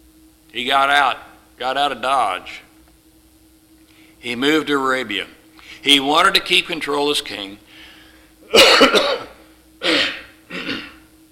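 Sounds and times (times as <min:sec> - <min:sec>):
speech: 0:00.5 - 0:02.7, 0:04.2 - 0:07.6, 0:08.5 - 0:10.1
person coughing: 0:08.4 - 0:11.1
throat clearing: 0:08.5 - 0:11.1.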